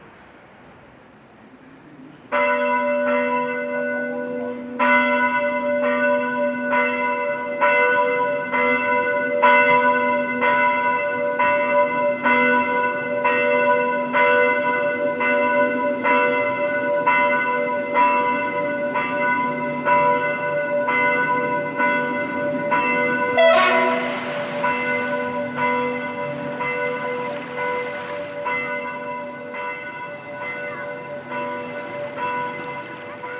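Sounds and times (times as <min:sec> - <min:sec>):
church bells ringing in Armenia: 0:02.3 - 0:33.3.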